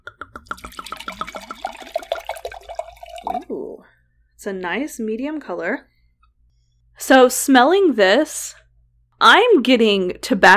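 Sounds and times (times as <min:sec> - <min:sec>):
wine pouring into a glass: 0:00.4 - 0:03.8
speech: 0:04.4 - 0:05.9, 0:07.1 - 0:08.6, 0:09.2 - 0:10.5.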